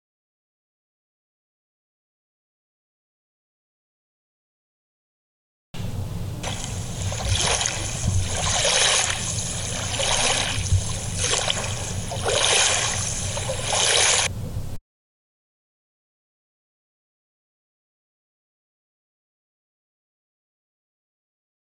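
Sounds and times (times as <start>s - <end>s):
water lapping against the stern of a boat: 6.4s - 14.3s.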